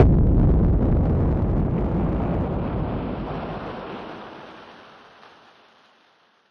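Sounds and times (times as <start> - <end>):
noise bomb: 0.0 - 4.9.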